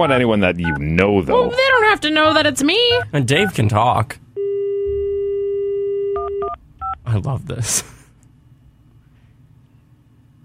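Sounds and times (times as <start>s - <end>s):
speech: 0.0s - 4.2s, 7.1s - 8.0s
phone dial tone: 4.4s - 6.6s.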